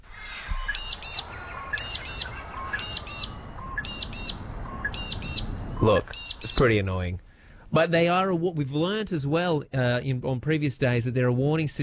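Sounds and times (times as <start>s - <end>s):
magpie-lark calling with sharp paired high notes: 0.1s - 6.8s
speech: 5.8s - 11.8s.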